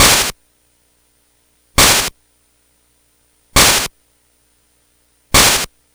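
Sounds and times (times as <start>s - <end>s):
Game Boy 8-bit chiptune noise crash loop: 1.8s - 2.1s, 3.6s - 3.9s, 5.4s - 5.7s.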